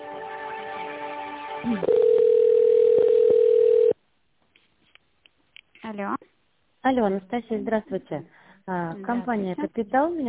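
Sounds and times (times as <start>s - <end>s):
speech: 1.6s - 2.1s, 6.8s - 10.2s
telephone line tone during an office call transfer: 1.6s - 4.0s.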